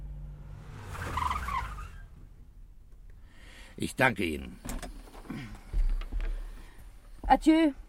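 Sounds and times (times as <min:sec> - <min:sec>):
car tires surging to a stop: 0:00.0 - 0:03.2
car engine rumbling while pulling up: 0:00.0 - 0:07.8
speech: 0:03.8 - 0:04.7, 0:05.3 - 0:05.6, 0:07.3 - 0:07.8.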